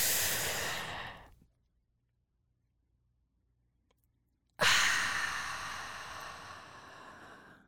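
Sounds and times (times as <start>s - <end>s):
slow deliberate breathing in and out: 0.0s - 1.4s, 4.6s - 7.6s.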